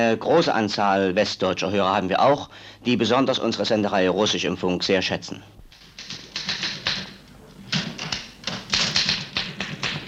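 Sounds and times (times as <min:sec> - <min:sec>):
speech: 0:00.0 - 0:05.6
typewriter keys clacking in a radio station newsroom: 0:05.7 - 0:10.0.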